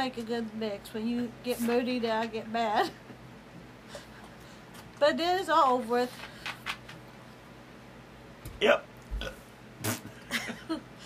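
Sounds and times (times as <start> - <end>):
speech: 0.0 - 3.1, 5.0 - 6.4, 8.6 - 8.9
short throaty burp: 8.6 - 10.1.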